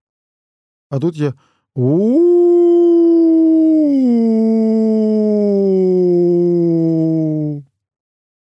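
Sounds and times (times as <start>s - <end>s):
speech: 0.9s - 2.6s
person imitating a wolf howl as a voice exercise: 1.8s - 7.7s.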